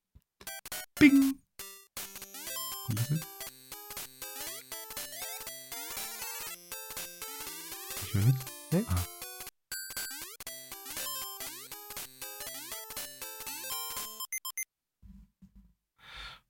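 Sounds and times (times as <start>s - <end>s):
beeping 8-bit chiptune platformer game music: 0.5s - 14.6s
person murmuring: 1.0s - 1.4s, 2.9s - 3.2s, 8.0s - 9.1s
speech: 1.0s - 1.4s
quick blippy 8-bit coin-collecting chimes: 2.4s - 3.3s, 8.0s - 9.1s.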